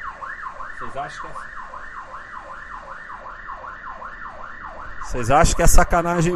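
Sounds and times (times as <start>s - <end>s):
emergency vehicle siren yelping: 0.0s - 6.3s
speech: 0.8s - 1.6s, 5.1s - 6.3s.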